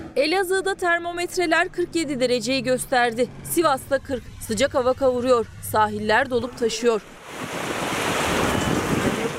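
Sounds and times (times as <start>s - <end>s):
speech: 0.2s - 7.2s
surf crashing at a crowded beach on Turkey's Aegean coast: 7.1s - 9.3s
wind noise: 7.3s - 9.3s.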